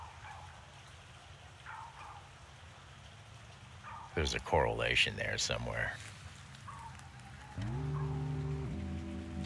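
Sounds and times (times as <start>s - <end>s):
dog barking faintly: 0.0s - 0.6s, 1.6s - 2.3s, 3.8s - 4.2s, 6.6s - 8.4s
wash of noise: 0.0s - 9.4s
speech: 4.2s - 6.1s.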